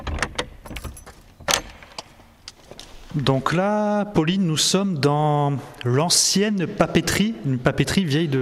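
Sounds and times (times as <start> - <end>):
heavy old door clunk at an exhibition entrance in a former paper mill: 0.0 - 2.3
sharp metallic clinks and rattles: 0.6 - 2.6
speech: 3.2 - 8.4.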